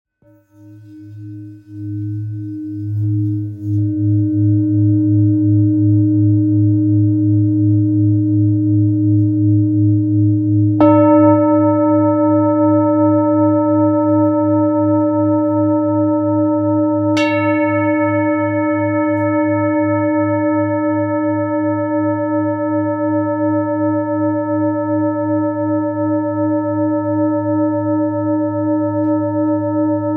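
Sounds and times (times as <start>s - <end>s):
2.25 kg singing bowl in D sharp: 0.2s - 30.1s.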